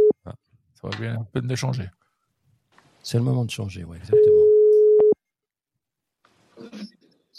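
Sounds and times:
speech: 0.8 - 2.0, 3.0 - 4.4
telephone line ringing tone: 4.1 - 5.2.

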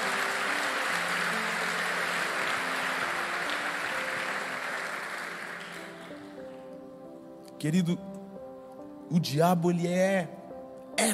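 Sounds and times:
audience applauding: 0.0 - 6.7
speech: 7.6 - 8.1, 9.1 - 10.4, 11.0 - 11.1.

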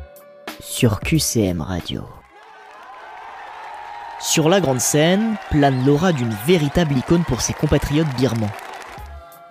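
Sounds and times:
speech: 0.6 - 2.2, 4.2 - 8.6
large crowd applauding and cheering: 2.2 - 9.4.

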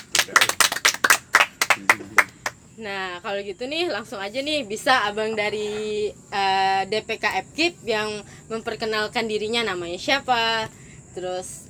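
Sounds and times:
group clapping: 0.0 - 2.6
speech: 2.8 - 11.6.

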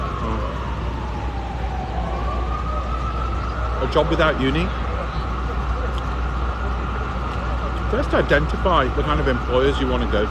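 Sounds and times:
low rumble of city traffic: 0.0 - 10.3
police siren wailing in a park in New York: 0.0 - 10.3
speech: 3.9 - 4.9, 7.9 - 10.3.

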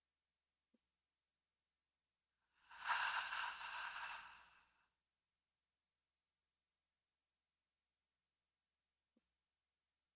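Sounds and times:
deep breath through the mouth in a guided breathing exercise: 2.6 - 4.8.

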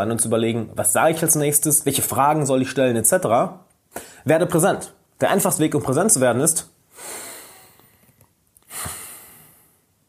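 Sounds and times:
speech: 0.0 - 7.2
slow deep breaths taken as a calming exercise: 3.9 - 4.2, 6.9 - 9.9.

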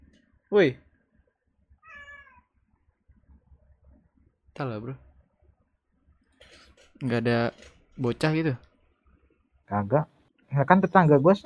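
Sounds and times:
speech: 0.5 - 0.8, 4.6 - 5.1, 7.0 - 8.7, 9.7 - 11.4
cat meowing: 1.8 - 2.5.

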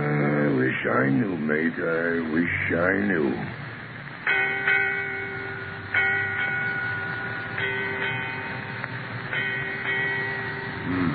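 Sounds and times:
speech: 0.9 - 3.6
ship's bell striking eight bells: 4.2 - 11.1.

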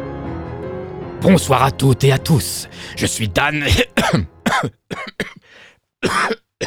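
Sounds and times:
speech: 1.2 - 5.2
harsh coughs from a speaker with a frog in the throat: 1.2 - 6.6
breathy rasp: 2.7 - 3.0, 3.8 - 5.8
throat clearing: 2.7 - 6.6.

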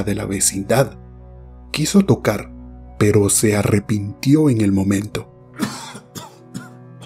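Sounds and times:
speech: 0.0 - 1.0, 1.7 - 5.8
elderly sick man coughing in the neighbouring building: 5.6 - 7.0.

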